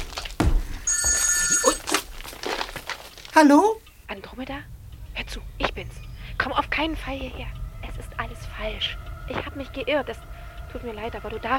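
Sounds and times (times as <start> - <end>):
telephone bell ringing: 0.9 - 1.9
speech: 3.4 - 11.5.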